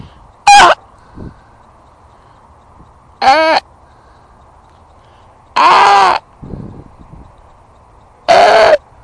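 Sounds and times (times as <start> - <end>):
person imitating a swan's call: 0.5 - 0.8, 3.2 - 3.7, 5.6 - 6.3, 8.3 - 8.8.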